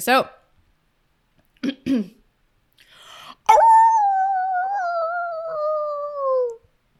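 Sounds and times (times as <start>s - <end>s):
speech: 0.0s - 0.4s, 1.6s - 2.2s
person imitating gruff dog barks: 3.4s - 6.6s.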